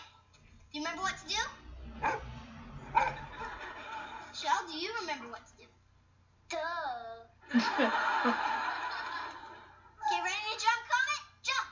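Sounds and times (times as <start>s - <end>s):
low hum: 0.0s - 11.7s
speech: 0.8s - 2.3s, 4.6s - 5.8s, 6.5s - 8.6s
dog barking: 2.0s - 3.3s
laughter: 3.1s - 4.4s, 7.4s - 9.9s.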